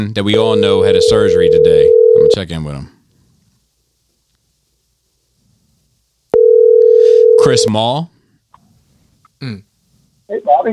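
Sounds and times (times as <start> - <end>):
speech: 0.0 - 3.0, 7.4 - 8.1, 9.4 - 9.7, 10.3 - 10.7
telephone ringing tone: 0.4 - 2.4, 6.4 - 7.7.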